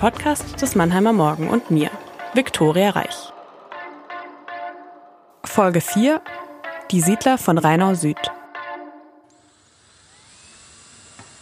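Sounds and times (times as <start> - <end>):
speech: 0.0 - 3.4, 5.4 - 8.4
power tool whining with a high buzzing pitch: 0.0 - 5.4, 9.2 - 11.4.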